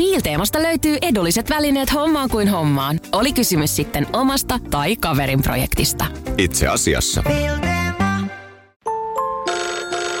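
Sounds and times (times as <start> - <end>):
speech: 0.0 - 7.7
phone ringtone of incoming call with synthesized chimes: 8.8 - 10.1.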